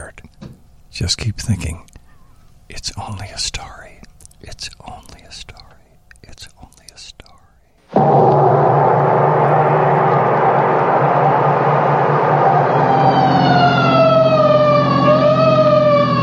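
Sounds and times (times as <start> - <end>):
speech: 1.0 - 1.9, 2.7 - 5.6
siren of a passing vehicle wailing: 7.9 - 16.2.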